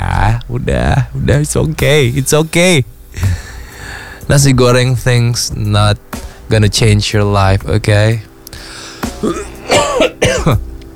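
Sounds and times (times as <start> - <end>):
speech: 0.5 - 3.4, 4.3 - 8.3, 9.2 - 10.7
harsh throaty coughs: 9.2 - 10.7.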